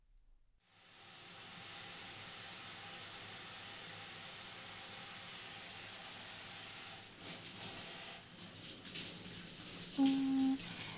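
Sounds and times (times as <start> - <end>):
warm water running to rinse hair during a hair wash: 7.2 - 10.9.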